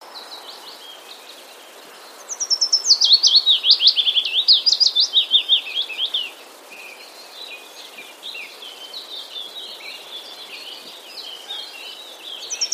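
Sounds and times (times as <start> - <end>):
willow warbler delivering a descending cascade of notes in Wroblowe, Poland: 0.0 - 12.7
birds chattering softly in Wroblowe, Poland: 0.2 - 12.7.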